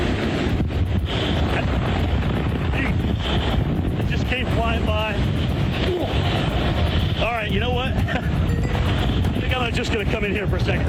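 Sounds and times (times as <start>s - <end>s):
storm wind roaring outdoors on a street: 0.0s - 10.8s
speech: 9.8s - 10.8s.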